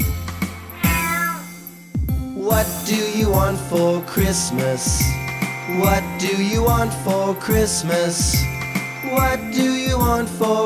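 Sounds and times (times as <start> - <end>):
cat meowing: 0.7 - 1.6
speech: 2.6 - 10.6.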